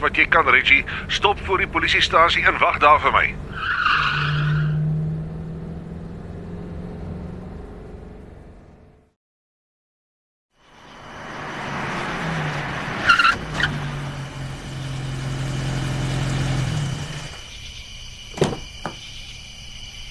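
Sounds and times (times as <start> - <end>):
speech: 0.0 - 4.2
motorcycle tires skidding: 0.0 - 8.6, 10.6 - 17.6
rushing engine roar: 0.0 - 9.2, 10.6 - 17.4
motorcycle speeding past: 4.0 - 9.2, 10.8 - 17.4.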